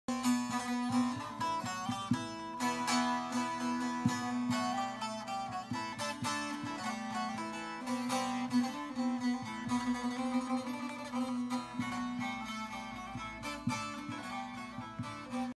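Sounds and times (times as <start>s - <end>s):
saz: 0.1s - 15.5s.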